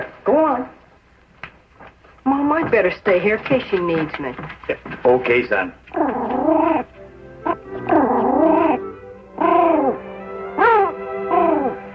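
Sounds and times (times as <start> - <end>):
speech: 2.6 - 6.6
dog whimpering: 5.9 - 10.0, 10.6 - 11.9.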